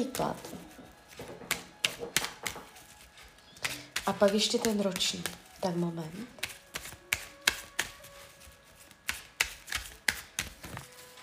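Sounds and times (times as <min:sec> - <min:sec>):
speech: 0:00.0 - 0:00.6, 0:04.0 - 0:06.4
playing cards being shuffled: 0:00.0 - 0:11.2.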